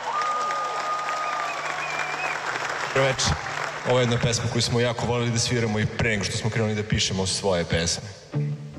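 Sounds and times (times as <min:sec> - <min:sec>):
audience applause for musicians at a concert: 0:00.0 - 0:04.8
speech: 0:03.0 - 0:08.5.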